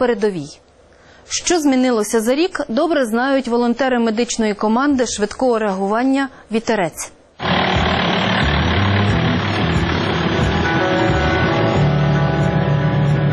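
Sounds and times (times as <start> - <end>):
speech: 0.0 - 0.6, 1.3 - 7.5
vehicle engine running while driving a frontline road toward a dam: 7.4 - 13.2.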